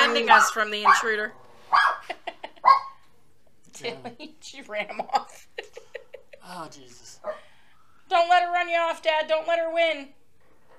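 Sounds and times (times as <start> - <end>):
small chihuahua barking: 0.0 - 3.0
speech: 0.1 - 2.9, 3.8 - 5.9, 6.5 - 7.5, 8.1 - 10.2.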